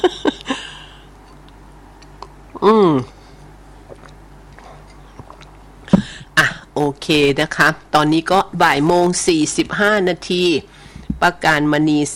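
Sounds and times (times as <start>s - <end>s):
lip smacks: 1.3s - 2.6s, 3.8s - 6.4s
speech: 2.6s - 3.2s, 6.9s - 12.1s
coffee being sipped: 3.8s - 6.2s.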